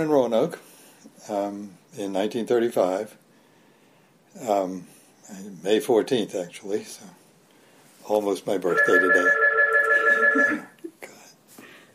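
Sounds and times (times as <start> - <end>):
speech: 0.0 - 3.2, 4.4 - 7.2, 8.0 - 9.4, 10.3 - 10.7
telephone ringing with a bright electronic tone: 8.7 - 10.7.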